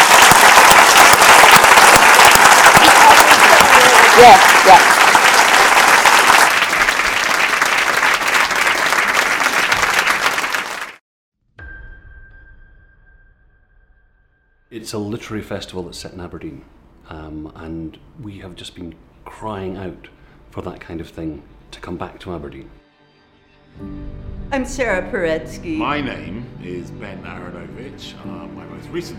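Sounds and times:
audience applause at a literary festival in Aberdeen: 0:00.0 - 0:11.0
speech: 0:04.2 - 0:05.0, 0:14.8 - 0:22.8, 0:23.8 - 0:29.1.

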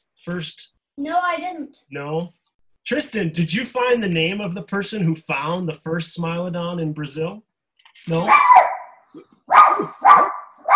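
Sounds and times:
speech: 0:00.2 - 0:08.6, 0:09.2 - 0:10.7
dog barking: 0:08.3 - 0:10.7.

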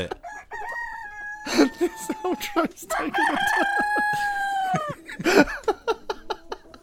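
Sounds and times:
speech: 0:00.0 - 0:00.2, 0:01.4 - 0:05.6
laughter: 0:00.0 - 0:00.3, 0:01.4 - 0:06.8
chickens clucking: 0:00.0 - 0:06.8
rooster crowing: 0:00.2 - 0:05.0.

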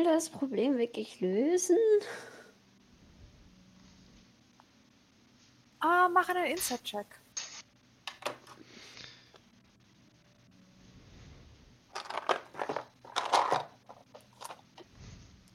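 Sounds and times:
speech: 0:00.0 - 0:02.4, 0:05.8 - 0:07.2
die being unwrapped from crinkly plastic packaging: 0:11.9 - 0:14.9.

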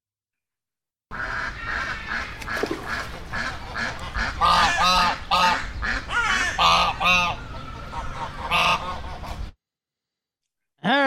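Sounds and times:
flock of ducks quacking: 0:01.1 - 0:09.6.

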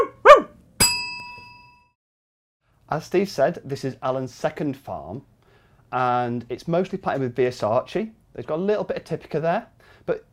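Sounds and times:
dog barking: 0:00.0 - 0:00.6
sharp metallic strike ringing: 0:00.8 - 0:01.8
speech: 0:02.9 - 0:05.3, 0:05.9 - 0:10.3.

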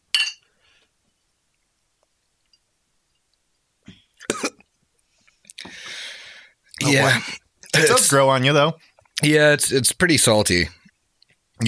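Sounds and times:
glasses clinking in a toast: 0:00.1 - 0:00.5
person coughing and clearing throat: 0:04.2 - 0:04.6, 0:06.9 - 0:08.1
speech: 0:06.9 - 0:10.8.

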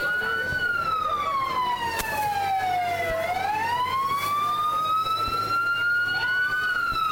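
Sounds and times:
fire brigade truck siren wailing in a parade: 0:00.0 - 0:07.0.

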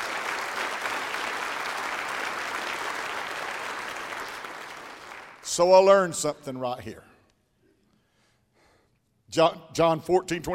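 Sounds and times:
crowd applauding: 0:00.0 - 0:05.6
speech: 0:05.5 - 0:07.1, 0:09.3 - 0:10.5.

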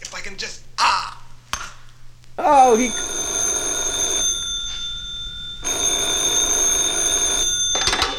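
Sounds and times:
speech: 0:00.3 - 0:00.6, 0:02.4 - 0:03.1
telephone ringing with an electronic trill: 0:02.5 - 0:08.1.

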